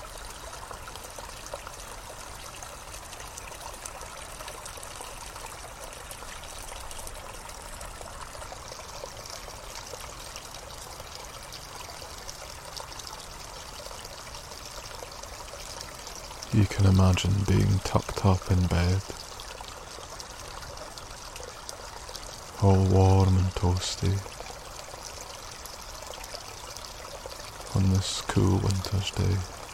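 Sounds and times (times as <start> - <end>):
water trickling along a small stream: 0.0 - 29.7
speech: 16.6 - 19.2, 22.6 - 24.4, 27.8 - 29.6.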